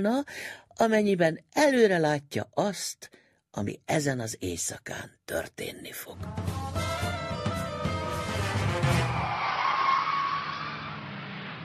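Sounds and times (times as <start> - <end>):
speech: 0.0 - 6.6
car tire squeal: 7.9 - 11.6
car engine revving and pulling away at night: 10.4 - 11.6.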